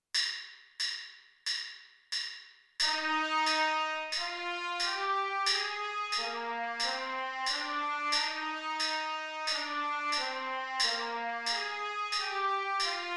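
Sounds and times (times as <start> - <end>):
trumpet playing an F major scale: 2.9 - 13.1.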